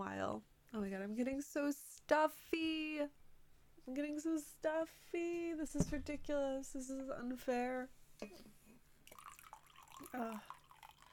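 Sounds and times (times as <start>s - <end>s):
speech: 0.0s - 3.2s, 3.9s - 8.6s, 10.0s - 10.6s
coffee pouring into a cup: 9.0s - 11.1s.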